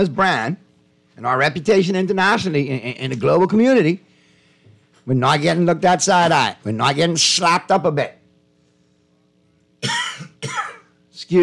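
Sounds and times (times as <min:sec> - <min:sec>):
speech: 0:00.0 - 0:00.6, 0:01.2 - 0:04.1, 0:05.0 - 0:08.2
person coughing: 0:09.8 - 0:11.0.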